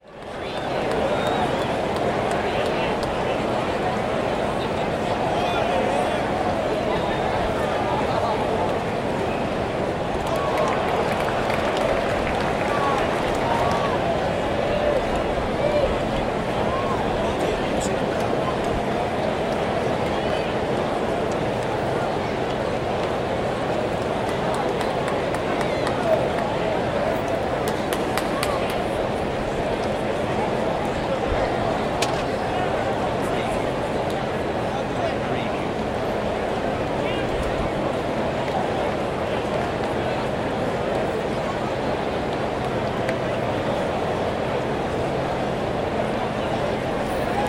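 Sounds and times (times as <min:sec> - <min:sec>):
baseball sports crowd: 0:00.0 - 0:47.4.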